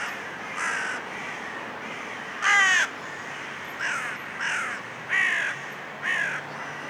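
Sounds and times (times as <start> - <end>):
carrion crow Corvus corone giving harsh caws: 0.6 - 1.4, 2.4 - 2.9, 3.8 - 6.4.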